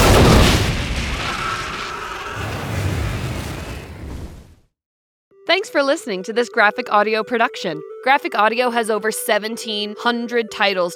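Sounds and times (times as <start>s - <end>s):
metal jerry can full of gasoline exploding after tracer gunfire: 0.0s - 4.4s
speech: 5.6s - 10.9s.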